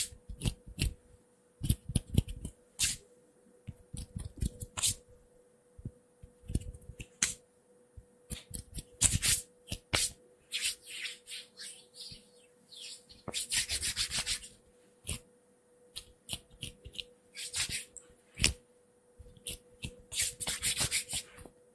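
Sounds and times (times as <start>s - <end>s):
faint constant hum: 0.0s - 21.7s
hands rubbing and brushing against a surface: 9.0s - 15.2s, 17.4s - 17.9s.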